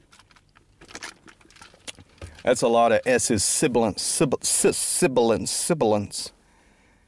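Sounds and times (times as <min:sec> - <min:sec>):
sipping a fountain soda: 0:00.0 - 0:03.1
speech: 0:02.4 - 0:06.4.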